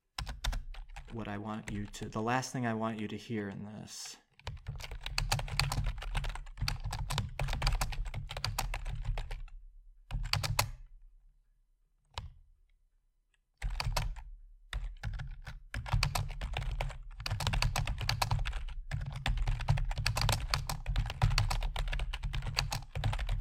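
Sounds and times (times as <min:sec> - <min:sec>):
fingers typing on a computer keyboard: 0:00.2 - 0:02.0, 0:04.3 - 0:09.5, 0:10.1 - 0:10.8, 0:13.6 - 0:23.3
speech: 0:01.1 - 0:04.2.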